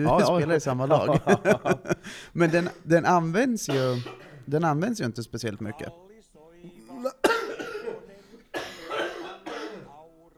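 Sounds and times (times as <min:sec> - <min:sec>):
laughter: 0:00.0 - 0:03.2
speech: 0:00.0 - 0:06.1
harsh loud coughs: 0:02.4 - 0:03.0, 0:03.7 - 0:04.5, 0:06.7 - 0:10.0.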